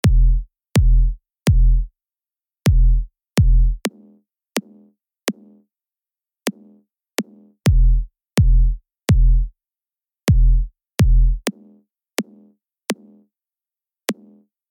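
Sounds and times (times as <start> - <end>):
equalised kick drum: 0.0 - 1.9, 2.7 - 4.0, 7.2 - 9.5, 10.3 - 11.6.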